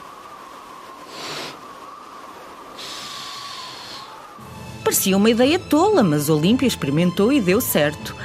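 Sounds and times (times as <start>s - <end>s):
people blowing air: 0.0s - 4.4s
speech: 4.9s - 8.2s.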